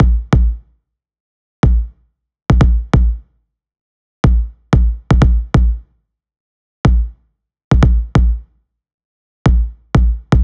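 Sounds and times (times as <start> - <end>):
pop kick drum loop: 0.0 - 0.6, 1.6 - 1.9, 2.5 - 3.2, 4.2 - 5.8, 6.9 - 8.4, 9.5 - 10.4.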